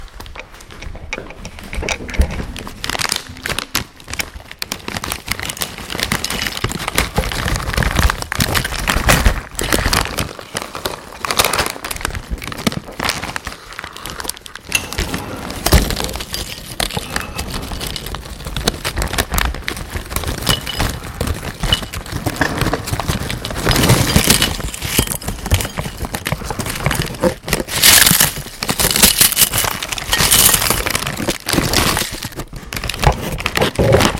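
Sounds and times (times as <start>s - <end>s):
crisps emptied out of a bag: 2.4s - 34.1s.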